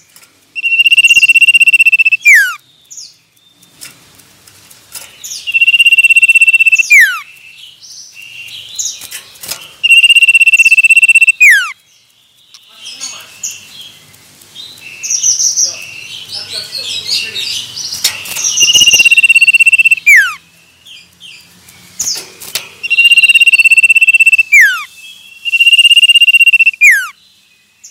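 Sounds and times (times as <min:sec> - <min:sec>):
male common iora song with trilled whistles: 0:00.6 - 0:02.6, 0:05.5 - 0:07.2, 0:09.8 - 0:11.8, 0:18.5 - 0:20.4, 0:22.8 - 0:27.2
quieter varied chirps of common iora: 0:00.6 - 0:03.8, 0:05.1 - 0:27.8.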